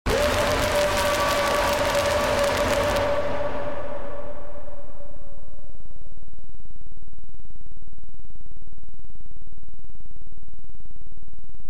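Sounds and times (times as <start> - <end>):
male jumpscare scream: 0.1 - 3.3.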